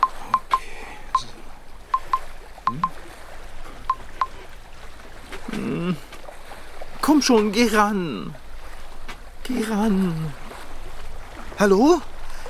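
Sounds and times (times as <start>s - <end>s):
electronic phone keypad beeps dialing a number: 0.0s - 0.6s, 2.0s - 2.9s, 3.9s - 4.3s
speech: 7.1s - 8.4s, 9.5s - 10.4s, 11.6s - 12.1s.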